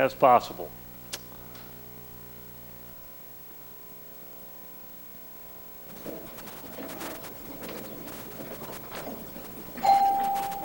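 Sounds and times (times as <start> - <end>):
speech: 0.0 - 0.8
doorbell chiming with a single bright sustained tone: 9.8 - 10.6.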